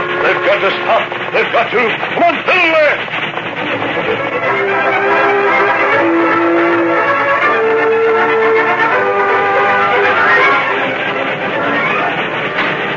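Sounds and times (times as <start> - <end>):
oncoming train engine rumbling: 0.0 - 12.9
speech: 0.5 - 5.3
sustained whistle-like tones: 5.2 - 12.8.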